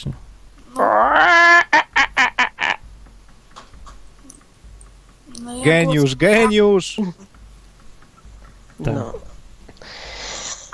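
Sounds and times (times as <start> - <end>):
speech: 0.0 - 0.2, 5.6 - 7.3
person imitating hen clucking: 0.7 - 2.8.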